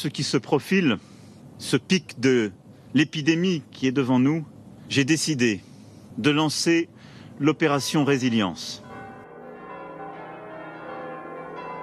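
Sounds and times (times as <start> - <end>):
speech: 0.0 - 8.8
church bells ringing a peal in France: 7.4 - 11.8.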